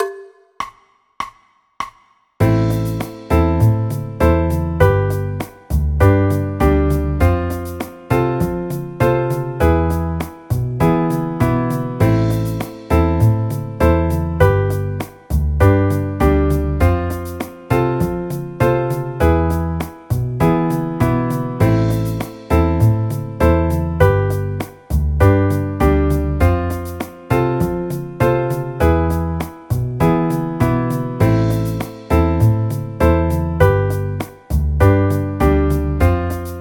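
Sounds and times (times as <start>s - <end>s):
A minor chord progressions: 2.4s - 36.6s.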